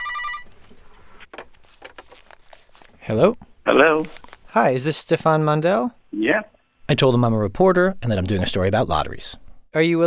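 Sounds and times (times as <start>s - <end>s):
telephone ringing: 0.0s - 0.5s
speech: 3.1s - 10.0s.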